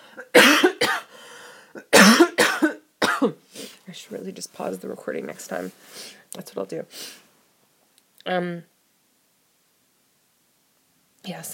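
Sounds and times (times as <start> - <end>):
person coughing: 0.2 - 1.1, 1.8 - 3.4
speech: 4.1 - 7.2, 8.2 - 8.7, 11.3 - 11.5.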